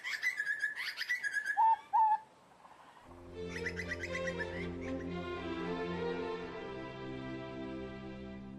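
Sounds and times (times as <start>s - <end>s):
butcherbird singing fluting whistled phrases: 0.0s - 2.3s, 3.4s - 5.2s
droning instrumental music with trilling notes: 3.1s - 8.5s.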